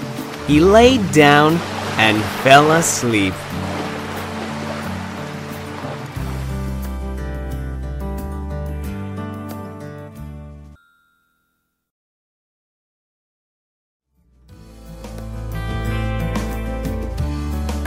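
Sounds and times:
sea waves washing onto a shore: 0.0 - 6.8
sustained musical backdrop: 0.0 - 10.8, 14.5 - 17.8
speech: 0.5 - 3.6.

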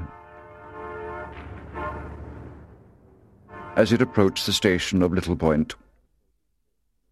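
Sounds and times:
train horn hooting at a seaside station: 0.0 - 2.2, 3.4 - 4.6
speech: 3.8 - 5.8.

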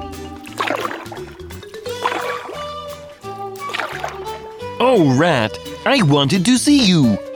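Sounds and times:
gentle music: 0.0 - 7.3
rowing boat oar strokes swishing and splashing through water: 0.4 - 2.7, 3.6 - 4.4
speech: 4.8 - 7.2.

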